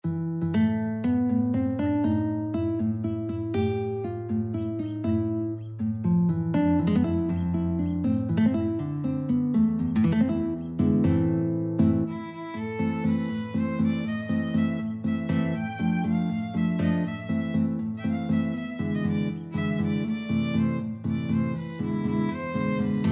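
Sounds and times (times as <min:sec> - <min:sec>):
guitar: 0:00.0 - 0:23.1
violin: 0:12.0 - 0:23.1.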